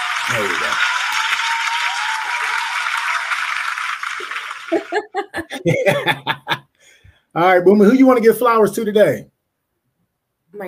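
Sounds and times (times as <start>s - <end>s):
canned applause sound effect of a dense crowd clapping played from a phone: 0.0s - 6.0s
cheering voices: 0.0s - 6.5s
speech: 0.3s - 0.9s, 4.9s - 6.6s, 7.4s - 9.3s
bursts of laughter: 4.1s - 6.7s.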